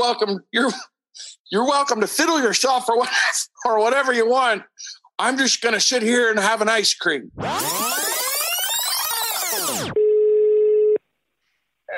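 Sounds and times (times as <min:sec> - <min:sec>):
speech: 0:00.0 - 0:08.0
loud sweeping electronic whine: 0:07.4 - 0:10.0
telephone ringing tone on the line: 0:07.6 - 0:11.0.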